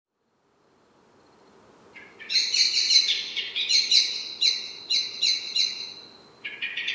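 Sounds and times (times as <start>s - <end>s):
common blackbird Turdus merula calls: 2.0s - 6.9s.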